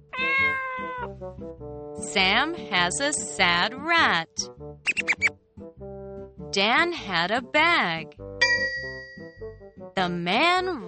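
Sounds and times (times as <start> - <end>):
cat meowing: 0.0 - 1.1
speech: 1.3 - 5.1, 6.6 - 8.2, 10.0 - 10.8.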